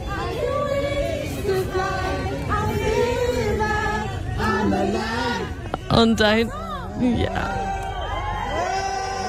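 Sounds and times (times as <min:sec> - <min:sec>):
crowd of fans singing together: 0:00.0 - 0:09.2
speech: 0:06.0 - 0:07.8
people whooping: 0:06.6 - 0:09.2.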